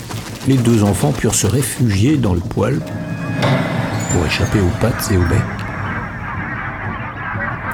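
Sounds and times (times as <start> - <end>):
speech: 0.4 - 5.6
chorus of many wild geese honking: 5.6 - 7.7.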